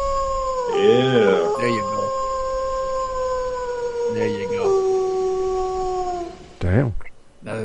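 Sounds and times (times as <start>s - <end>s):
wavering howl: 0.0s - 6.6s
steady electronic hum: 0.0s - 7.6s
speech: 0.8s - 1.9s.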